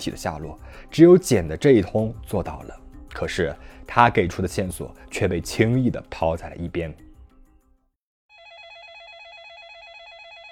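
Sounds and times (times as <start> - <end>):
speech: 0.0 - 7.0
electronic telephone ring with a rapid warbling tone: 8.3 - 10.4.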